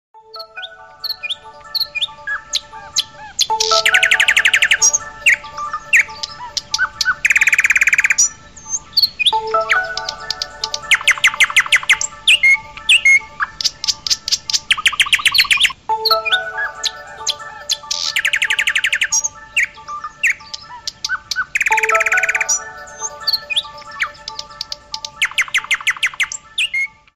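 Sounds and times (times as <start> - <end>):
wake up alarm ringtone: 0.2 - 13.6, 14.9 - 26.2.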